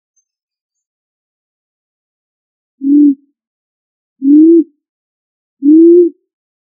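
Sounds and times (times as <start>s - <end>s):
pigeon giving low smooth coos: 2.8s - 3.2s, 4.2s - 4.7s, 5.6s - 6.2s.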